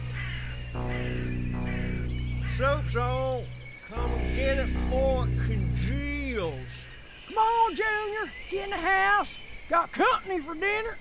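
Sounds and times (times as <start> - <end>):
crows cawing: 0.0 - 4.1
speech: 2.6 - 11.0.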